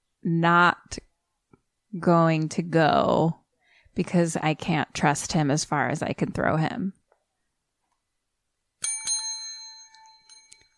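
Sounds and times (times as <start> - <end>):
speech: 0.2 - 1.1, 1.9 - 3.4, 4.0 - 7.0
bell dinging: 8.8 - 10.7.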